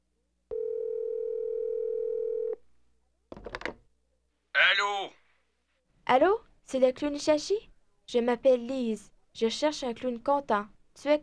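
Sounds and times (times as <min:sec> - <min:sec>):
telephone dial tone: 0:00.5 - 0:02.6
speech: 0:06.1 - 0:11.2.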